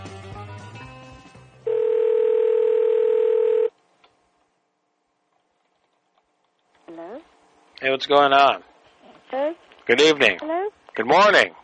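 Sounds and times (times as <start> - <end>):
telephone dialing tones: 1.7 - 3.7
speech: 7.8 - 8.7, 9.3 - 11.6.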